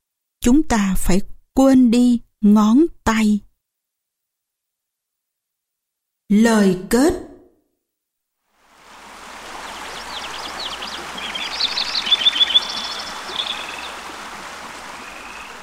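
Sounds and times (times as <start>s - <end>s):
speech: 0.4s - 3.5s, 6.3s - 7.3s
mountain stream flowing: 8.5s - 15.6s
high chirping calls: 9.6s - 14.2s, 14.9s - 15.6s.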